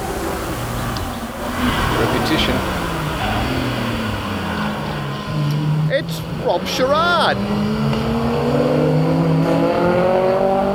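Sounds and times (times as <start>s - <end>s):
Lancia Fulvia HF rally car engine revving: 0.0s - 10.7s
speech: 6.0s - 8.2s.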